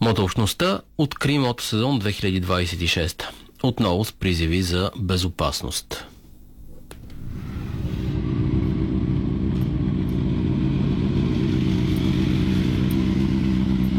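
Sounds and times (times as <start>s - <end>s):
speech: 0.0s - 6.1s
motorcycle engines of hundreds of bikers roaring and revving in Varna Bulgaria: 8.1s - 13.9s.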